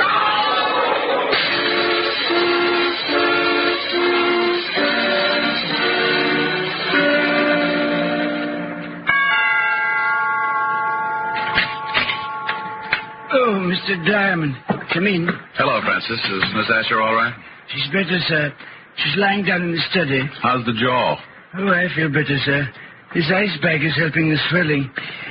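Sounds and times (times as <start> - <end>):
train approaching on the tracks: 0.0 - 15.8
train horn blasts: 1.4 - 9.1
sharp clanks: 11.3 - 13.3
speech: 13.9 - 25.2.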